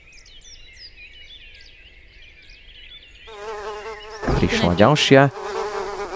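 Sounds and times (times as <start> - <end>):
bee buzzing: 3.3 - 6.1
speech: 4.4 - 5.6.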